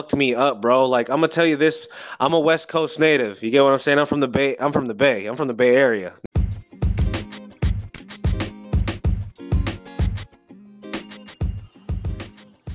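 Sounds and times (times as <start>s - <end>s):
speech: 0.0s - 6.3s
bell chime double dings marking commercial break: 6.8s - 8.8s, 10.8s - 12.7s.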